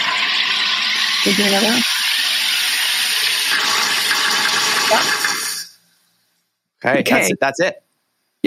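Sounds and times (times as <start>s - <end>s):
soda maker hissing while carbonating water: 0.0s - 6.0s
speech: 1.2s - 2.0s, 4.9s - 5.2s, 6.8s - 7.8s.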